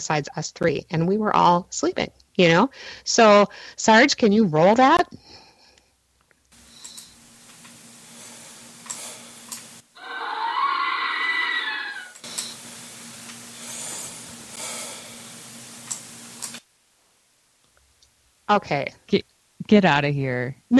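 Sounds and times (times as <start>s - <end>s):
speech: 0.0s - 5.4s, 18.5s - 20.7s
faint hum: 0.0s - 20.7s
soft breathing from a voice recorder playback: 2.7s - 3.8s, 5.1s - 6.0s, 13.5s - 15.4s
piercing scream from a voice recorder playback: 9.9s - 12.2s.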